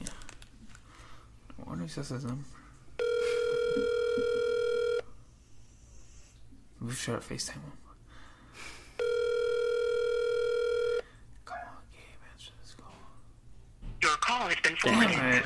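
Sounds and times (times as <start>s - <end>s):
speech: 1.9s - 2.6s, 6.9s - 7.8s, 14.7s - 15.4s
steady electronic ringback tone of an outgoing phone call: 3.0s - 5.1s, 9.0s - 11.0s.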